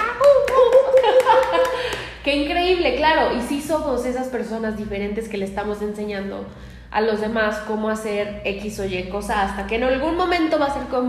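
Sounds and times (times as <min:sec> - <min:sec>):
monkeys applauding with sharp claps: 0:00.0 - 0:02.1
laughter: 0:00.6 - 0:02.1
speech: 0:02.3 - 0:11.0.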